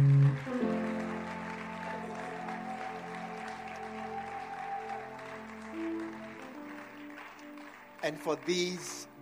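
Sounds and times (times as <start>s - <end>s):
audience clapping: 0.0s - 9.1s
speech: 8.1s - 9.1s.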